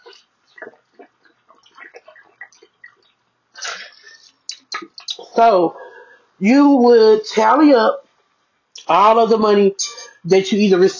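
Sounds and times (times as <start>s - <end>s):
person gulping and swallowing water: 0.0s - 5.4s
speech: 5.4s - 5.8s, 6.4s - 8.0s, 8.9s - 10.9s.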